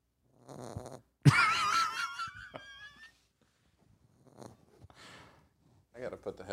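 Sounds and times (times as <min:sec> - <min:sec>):
dog snoring: 0:00.3 - 0:01.1, 0:04.1 - 0:04.8
speech: 0:06.0 - 0:06.5.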